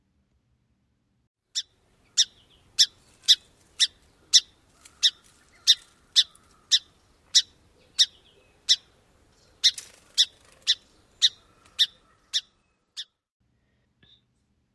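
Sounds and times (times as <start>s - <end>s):
song sparrow chip calls: 1.5s - 13.2s.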